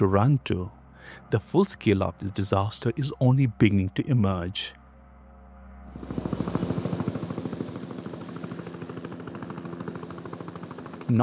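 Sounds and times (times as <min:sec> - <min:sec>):
speech: 0:00.0 - 0:04.8, 0:06.0 - 0:06.4
helicopter rotor blades thudding at a military base: 0:05.9 - 0:11.2.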